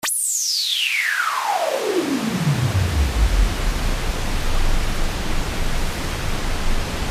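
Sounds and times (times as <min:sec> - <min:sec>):
high-pass filtered wave: 0:00.0 - 0:07.0.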